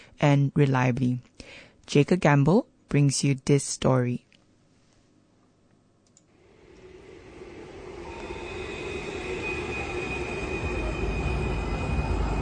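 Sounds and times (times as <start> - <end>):
speech: 0.2 - 4.3
steady metallic whine of a tram: 6.4 - 12.4
tram rumbling along rails: 6.4 - 12.4.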